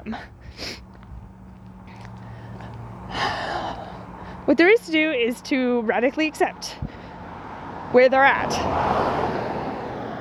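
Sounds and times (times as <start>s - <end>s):
speech: 0.0s - 0.8s, 4.5s - 6.9s, 7.9s - 9.2s
car passing by: 0.9s - 4.6s, 6.6s - 10.1s.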